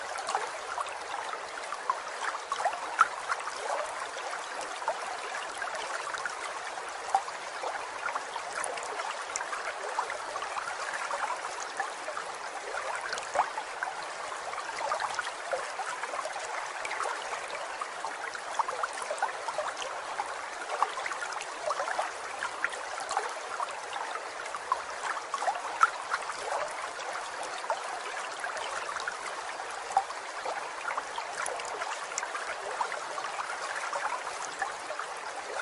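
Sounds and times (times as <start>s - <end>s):
small stream trickling: 0.0s - 35.5s.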